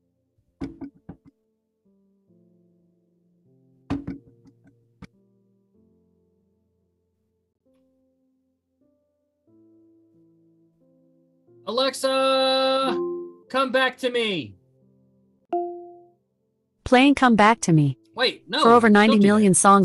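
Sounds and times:
sharp knocks on a door: 0.6 - 1.3, 3.9 - 4.3
speech: 11.7 - 14.6, 16.9 - 19.8.

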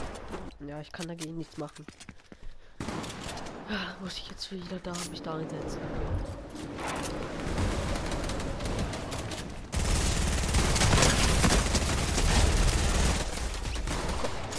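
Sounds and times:
speech: 0.6 - 2.1, 3.7 - 8.1
video game automatic gunfire from small minion characters: 7.5 - 14.5.

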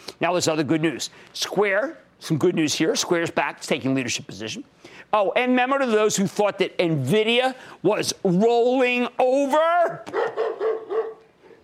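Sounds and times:
speech: 0.2 - 10.5
dog yelping: 10.0 - 11.2
dog barking: 10.1 - 11.3.

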